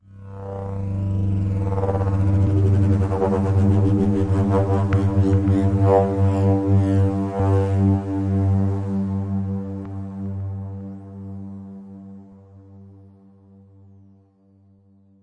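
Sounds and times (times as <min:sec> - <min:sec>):
approaching spindown synth: 0:01.2 - 0:09.6.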